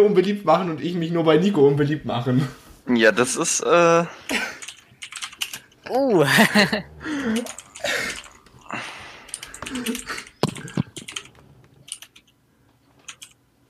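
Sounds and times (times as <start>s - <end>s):
speech: 0.0s - 4.6s, 5.9s - 8.9s, 9.7s - 10.2s
typing a sentence on a computer keyboard: 4.3s - 5.8s, 7.2s - 8.7s, 9.3s - 12.4s, 13.0s - 13.4s
people laughing: 6.2s - 8.3s.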